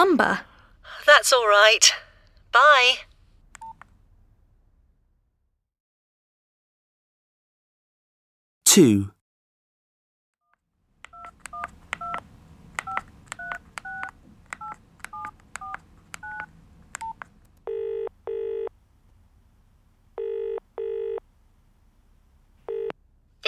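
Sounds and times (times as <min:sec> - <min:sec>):
speech: 0:00.0 - 0:03.1, 0:08.7 - 0:09.2
phone ringing tone: 0:17.7 - 0:18.7, 0:20.2 - 0:21.2, 0:22.7 - 0:22.9.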